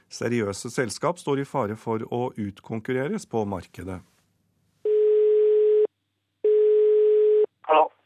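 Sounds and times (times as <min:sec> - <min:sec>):
speech: 0:00.1 - 0:04.1
telephone ringback tone: 0:04.9 - 0:07.5.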